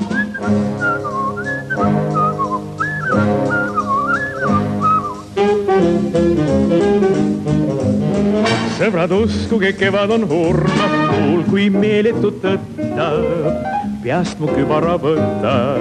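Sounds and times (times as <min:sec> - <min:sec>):
person whistling a bright wavering tune: 0:00.0 - 0:05.3
lively instrumental band backing: 0:00.0 - 0:15.7
speech: 0:08.9 - 0:15.7.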